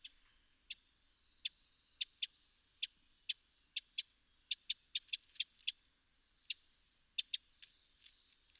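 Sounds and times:
Eurasian wren Troglodytes troglodytes giving sharp dry ticking calls: 1.4 - 5.8, 6.4 - 8.5.

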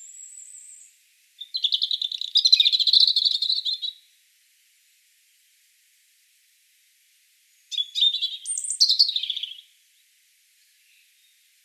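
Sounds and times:
European robin song with whistles and trilled notes: 0.0 - 4.0, 7.6 - 9.8, 10.6 - 11.6.

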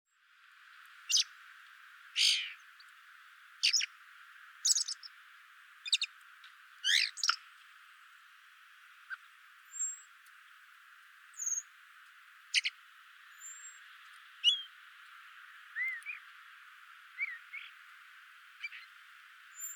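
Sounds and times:
Eurasian blackbird Turdus merula giving metallic chink calls: 1.1 - 1.3, 2.2 - 2.7, 3.6 - 3.9, 4.6 - 5.1, 5.8 - 6.2, 6.8 - 7.4, 11.4 - 11.7, 12.5 - 12.8, 14.4 - 14.8, 15.7 - 16.3, 17.2 - 17.8, 18.6 - 19.7.

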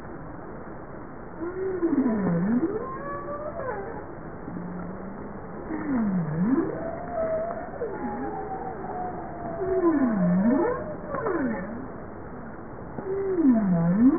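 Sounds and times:
Bowhead whale calling with low V-shaped moans: 1.4 - 12.0, 13.0 - 14.1
higher tonal sweeps: 1.4 - 12.0.

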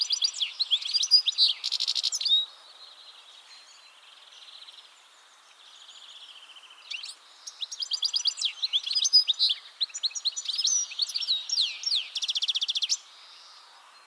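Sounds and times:
European goldfinch Carduelis carduelis twittering song: 0.0 - 14.0.

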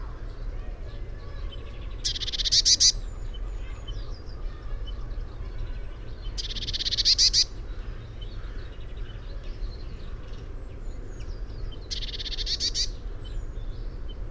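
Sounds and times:
steady low-pitched background rumble: 0.0 - 14.2
Eurasian blue tit Cyanistes caeruleus harsh buzzy churring: 2.0 - 3.0, 6.4 - 7.5, 11.9 - 12.9.

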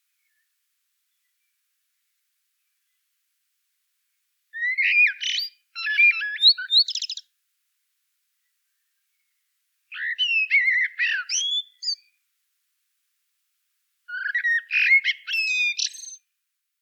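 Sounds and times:
Common blackbird Turdus merula song: 4.6 - 7.3, 9.9 - 12.2, 14.1 - 16.3.

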